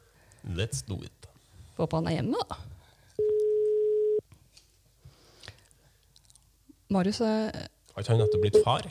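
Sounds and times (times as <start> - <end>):
speech: 0.5 - 2.7, 6.9 - 8.8
outgoing telephone ringing tone while placing a call: 3.2 - 4.2.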